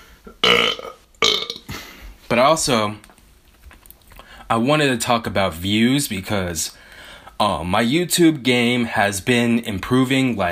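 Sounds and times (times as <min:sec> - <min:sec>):
loud throaty burps: 0:00.3 - 0:01.8
speech: 0:02.3 - 0:03.1, 0:04.5 - 0:06.8, 0:07.4 - 0:10.4.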